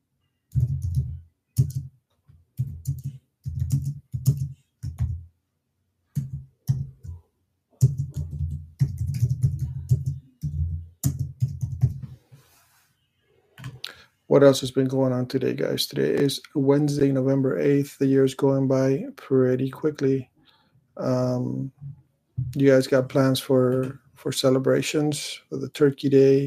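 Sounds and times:
typing on a computer keyboard: 0.5s - 1.9s, 2.6s - 5.2s, 7.8s - 12.0s
speech: 14.3s - 20.3s, 21.0s - 26.4s.

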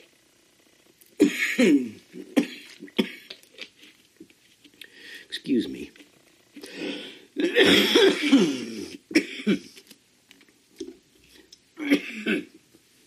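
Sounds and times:
person coughing in harsh bursts: 1.2s - 3.3s, 7.4s - 9.8s, 11.8s - 12.5s
speech: 1.6s - 2.4s, 5.4s - 6.0s, 7.6s - 8.7s, 9.5s - 9.7s.

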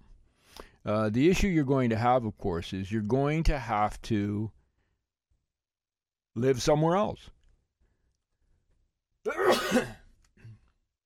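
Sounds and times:
speech: 0.8s - 4.6s, 6.4s - 7.4s, 9.2s - 10.0s
sneeze: 9.3s - 10.1s.

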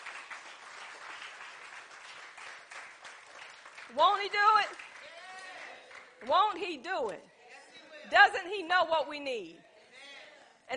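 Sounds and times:
audience applause during a sermon: 0.0s - 6.5s
speech: 3.9s - 4.9s, 6.2s - 7.3s, 8.1s - 9.6s.

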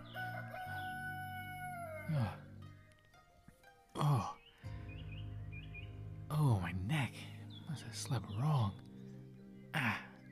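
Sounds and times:
rooster crowing: 0.0s - 2.3s
speech: 2.1s - 2.5s, 6.4s - 8.9s.

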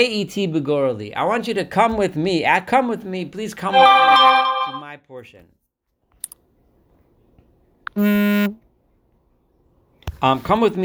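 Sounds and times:
speech: 0.0s - 5.6s, 8.0s - 8.6s, 10.2s - 10.8s
mobile phone ringing with buzzy electronic tone: 3.7s - 4.8s.

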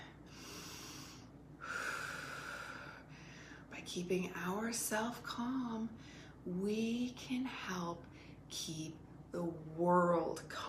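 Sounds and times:
long slow deep breaths with a thin whistling tone: 0.0s - 3.7s
speech: 3.9s - 10.6s.

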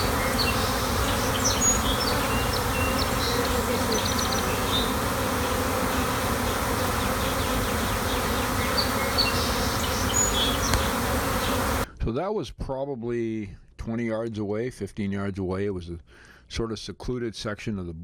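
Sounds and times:
individual honeybees whizzing past: 0.0s - 11.9s
swarming honeybees buzzing in a bush outdoors: 0.0s - 11.9s
speech: 12.1s - 18.0s.

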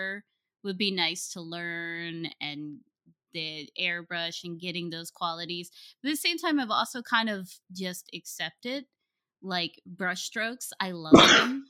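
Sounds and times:
speech: 0.1s - 11.6s
sneeze: 11.1s - 11.6s.

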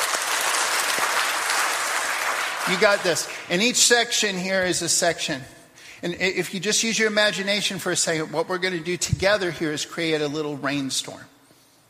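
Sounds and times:
crowd applause on cue: 0.0s - 3.5s
speech: 2.7s - 11.3s.

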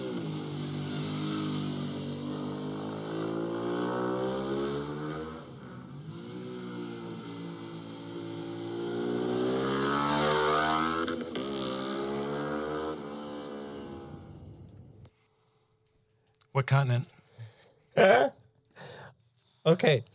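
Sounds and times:
V-twin motorcycle engine revving through aftermarket exhaust: 0.0s - 15.0s
speech: 16.6s - 17.2s, 18.0s - 18.4s, 19.6s - 20.1s.

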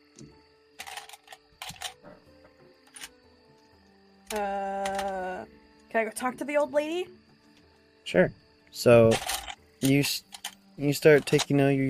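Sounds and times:
dice rattling and clicking as they are handled: 0.8s - 2.0s, 2.9s - 3.1s, 4.3s - 5.2s, 9.1s - 11.6s
speech: 4.3s - 4.8s, 5.9s - 7.2s, 8.1s - 9.2s, 9.8s - 11.8s.

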